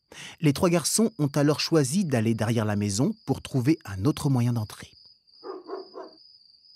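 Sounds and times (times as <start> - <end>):
speech: 0.4 - 5.0
dog barking: 5.4 - 6.2.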